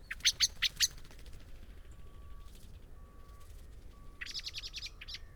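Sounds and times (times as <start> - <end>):
Common blackbird Turdus merula clicking calls: 0.1 - 1.1, 4.2 - 5.3.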